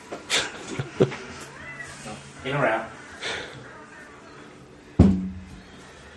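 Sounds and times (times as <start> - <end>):
speech: 1.0 - 1.2, 2.4 - 3.0
cat meowing: 1.4 - 2.2.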